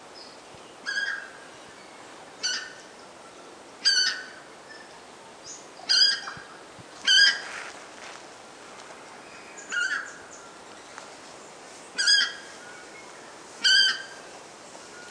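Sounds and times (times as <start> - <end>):
constant background hiss: 0.0 - 15.1
purple moorhen giving loud harsh nasal calls: 0.8 - 1.4, 2.4 - 2.8, 3.8 - 4.5, 5.8 - 7.5, 9.6 - 10.2, 11.9 - 12.6, 13.6 - 14.2.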